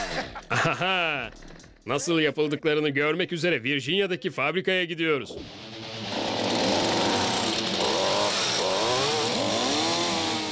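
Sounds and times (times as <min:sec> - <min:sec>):
laughter: 0:00.0 - 0:01.3
speech: 0:00.5 - 0:05.8
chainsaw with a small fuel-efficient engine running: 0:05.4 - 0:10.5.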